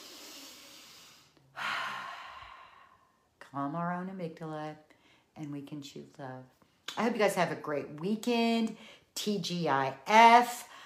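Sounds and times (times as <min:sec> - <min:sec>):
slow deep breathing: 0:00.0 - 0:03.3
speech: 0:03.5 - 0:10.7.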